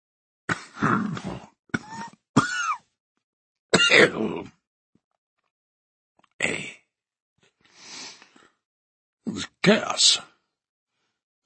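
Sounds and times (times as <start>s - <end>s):
man coughing into a handkerchief: 1.8s - 2.8s, 3.8s - 4.4s
speech: 9.7s - 10.3s.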